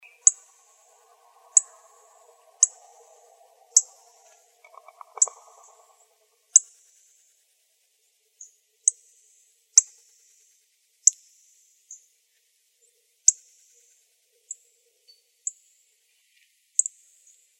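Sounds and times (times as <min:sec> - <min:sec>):
Northern cardinal chip calls in Arizona: 0:00.0 - 0:06.6.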